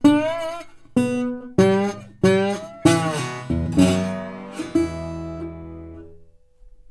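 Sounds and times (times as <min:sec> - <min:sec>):
blues guitar lick: 0:00.0 - 0:06.2.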